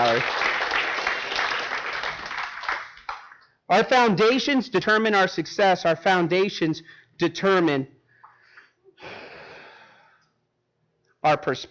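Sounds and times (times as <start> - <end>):
speech: 0.0 - 0.5, 3.7 - 8.0, 11.2 - 11.6
audience applause for volunteers at a talk: 0.0 - 3.4.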